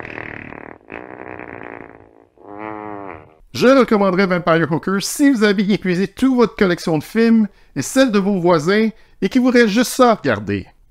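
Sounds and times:
long buzzy fart: 0.0 - 3.4
speech: 3.6 - 10.8.

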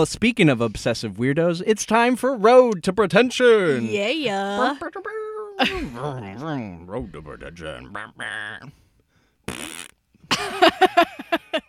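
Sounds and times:
speech: 0.0 - 8.8, 10.4 - 11.6
fart: 9.5 - 10.0.

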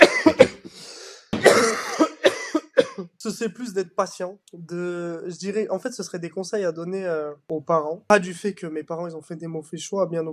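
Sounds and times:
person coughing: 0.0 - 3.2
speech: 3.2 - 10.3.

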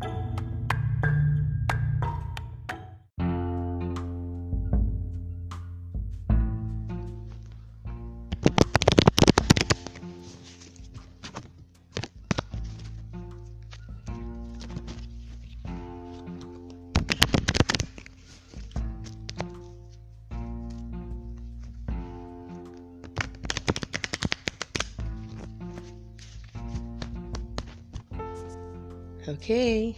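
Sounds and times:
soft music: 0.0 - 29.9
deck of cards being riffle-shuffled: 8.3 - 28.6
speech: 29.4 - 29.9.

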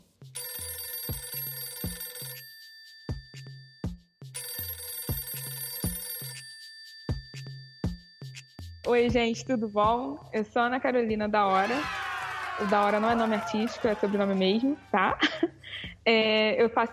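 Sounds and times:
telephone ringing: 0.4 - 9.8
speech: 8.9 - 12.0, 12.6 - 15.4, 16.0 - 16.9
laughter: 11.5 - 15.7.

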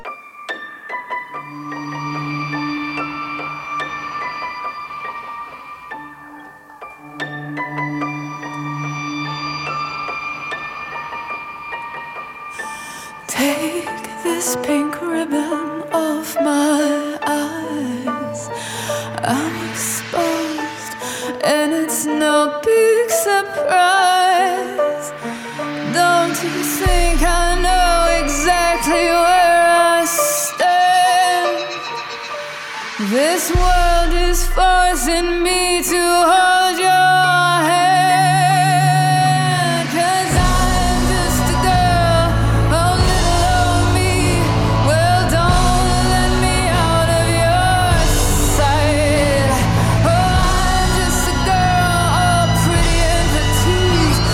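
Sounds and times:
song cover playing: 0.0 - 54.3
deep bass: 26.8 - 29.5, 33.6 - 36.4, 39.4 - 54.3.

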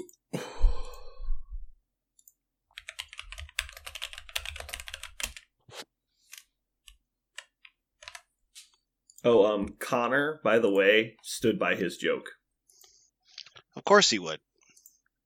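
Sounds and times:
typing on a computer keyboard: 2.2 - 5.5, 6.3 - 8.3
speech: 9.2 - 12.4, 13.9 - 14.5.

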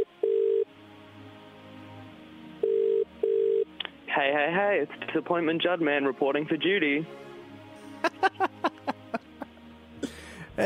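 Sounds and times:
telephone line ringing tones after a call is dialed: 0.0 - 0.7, 2.6 - 3.7
speech: 4.2 - 7.3
laughter: 7.9 - 9.6.

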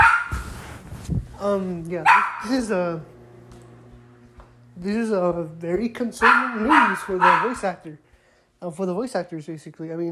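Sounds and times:
dog barking: 0.0 - 0.5, 2.0 - 2.6, 6.2 - 7.8
speech: 1.4 - 3.2, 4.8 - 10.1.

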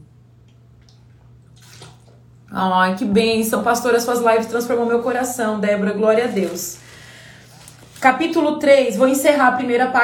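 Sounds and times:
steady low electrical hum: 0.0 - 10.0
sip and swallow of water from a glass: 0.6 - 2.4
speech: 2.5 - 6.9, 8.0 - 10.0.

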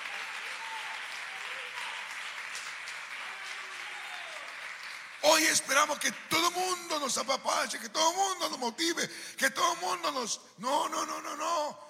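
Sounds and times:
large audience applauding: 0.0 - 7.1
speech: 5.2 - 11.8.

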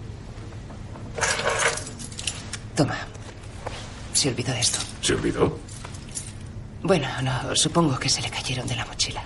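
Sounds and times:
low hum: 0.0 - 9.2
keys jingling and clinking as they are picked up: 1.2 - 2.6, 4.6 - 6.6
speech: 2.8 - 3.1, 4.2 - 5.7, 6.8 - 9.2.

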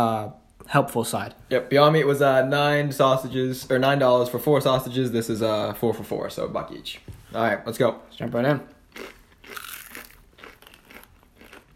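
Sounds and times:
speech: 0.0 - 9.6
crackling chewing of breaded plant-based chicken patty: 8.9 - 11.7
crunchy bite of breaded plant-based chicken patty: 8.9 - 11.7.

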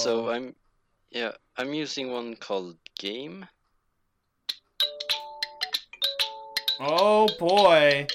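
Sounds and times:
speech: 0.0 - 3.6, 6.8 - 8.1
OnePlus electronic phone ringtone: 4.8 - 8.1.

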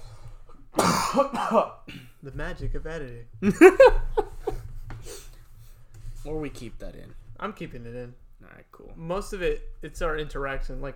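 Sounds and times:
single sharp cough: 0.8 - 2.2
speech: 1.2 - 4.2, 6.2 - 10.9
laughter: 3.4 - 4.8.

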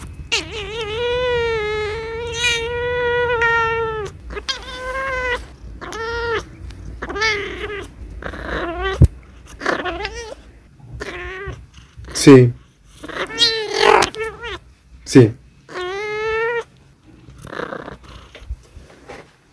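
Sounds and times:
domestic pet cat meowing and yowling: 0.0 - 10.4, 11.0 - 11.7, 13.0 - 14.6, 15.7 - 16.7
speech: 12.2 - 12.6, 15.1 - 15.4.

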